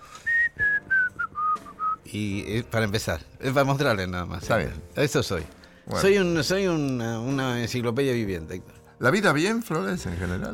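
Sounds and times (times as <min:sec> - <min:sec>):
whistled Hungarian csárdás dance tune: 0:00.0 - 0:02.2
speech: 0:02.1 - 0:10.5.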